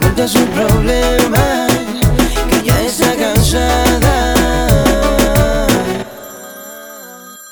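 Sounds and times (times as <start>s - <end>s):
low rhythmic thump: 0.0s - 5.8s
speech: 0.2s - 1.7s
electronic telephone ringtone for an incoming call: 6.0s - 7.5s.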